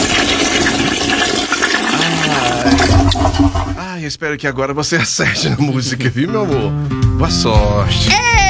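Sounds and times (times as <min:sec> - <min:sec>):
toilet flush: 0:00.0 - 0:03.9
speech: 0:03.4 - 0:08.4.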